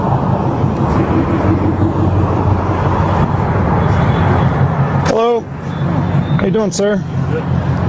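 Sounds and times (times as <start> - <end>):
engine and road rumble from a vehicle pulling over: 0.0 - 7.8
speech: 6.5 - 7.8.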